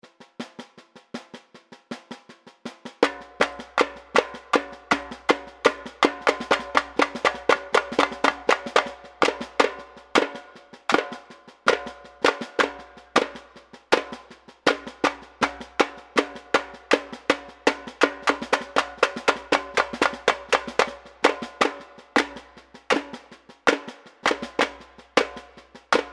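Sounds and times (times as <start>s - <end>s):
samba drum break: 0.0s - 26.1s.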